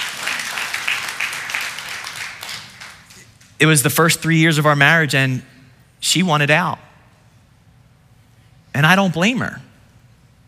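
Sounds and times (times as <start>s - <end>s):
crowd applauding: 0.0s - 3.4s
speech: 3.6s - 6.9s, 8.8s - 9.7s.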